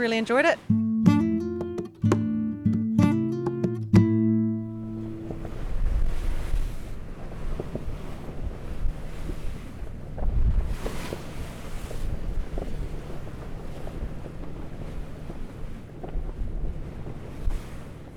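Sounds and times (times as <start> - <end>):
speech: 0.0 - 0.8
tonal notes: 0.6 - 5.7
waves washing against a sailboat hull in the San Blas Islands: 3.2 - 18.1
gusting sea wind buffeting the microphone on a sailboat off the Panamanian coast: 5.1 - 18.1.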